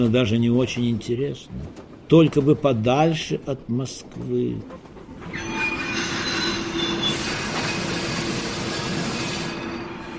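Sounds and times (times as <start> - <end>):
speech: 0.0 - 5.4
heavy rumble of rolling railcars: 0.0 - 10.1
train brakes screeching: 5.3 - 10.1.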